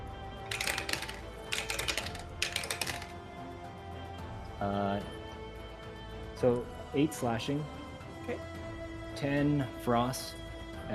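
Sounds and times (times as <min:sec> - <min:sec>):
several dice rattling across a hard surface: 0:00.5 - 0:03.2
speech: 0:04.6 - 0:05.2, 0:06.4 - 0:08.6, 0:09.2 - 0:10.9.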